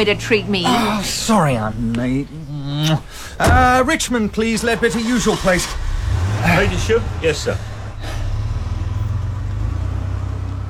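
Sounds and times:
speech: 0:00.0 - 0:05.8, 0:06.4 - 0:07.7
car engine rumbling as it drives off: 0:03.4 - 0:10.6.

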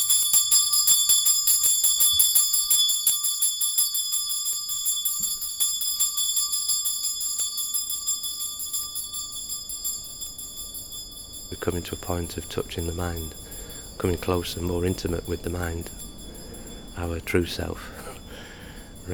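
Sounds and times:
handheld wake-up bell ringing at a Zen meditation retreat: 0:00.0 - 0:19.1
speech: 0:11.5 - 0:16.0, 0:17.0 - 0:18.0.

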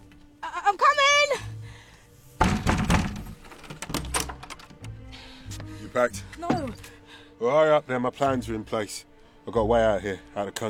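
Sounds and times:
clicks, knocks and rattling of a door being unlocked: 0:02.4 - 0:05.0
heavy clunk of a door latch: 0:02.4 - 0:05.0
speech: 0:06.0 - 0:10.6.

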